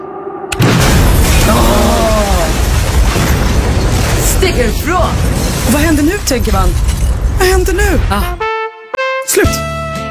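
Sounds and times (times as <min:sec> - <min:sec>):
loud bomb belt explosion: 0:00.5 - 0:08.1
speech: 0:04.4 - 0:08.4, 0:09.3 - 0:09.7.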